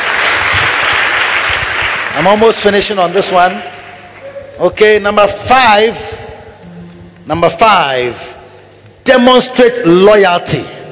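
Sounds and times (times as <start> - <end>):
audience clapping: 0.0 - 4.3
speech: 2.2 - 3.8, 4.6 - 6.1, 7.2 - 8.3, 9.1 - 10.8.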